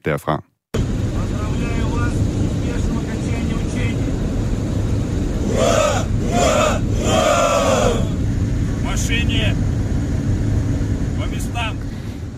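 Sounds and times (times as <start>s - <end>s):
speech: 0.0s - 0.5s, 9.0s - 9.8s
tank engines rumbling as tanks are driven onto a train: 0.8s - 12.3s
shouting voices of soldiers: 5.2s - 9.6s.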